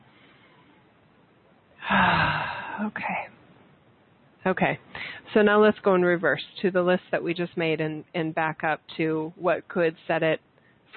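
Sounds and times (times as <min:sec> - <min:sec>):
deep breath: 0:01.8 - 0:02.8, 0:04.9 - 0:05.2
speech: 0:02.8 - 0:03.3, 0:04.4 - 0:10.9.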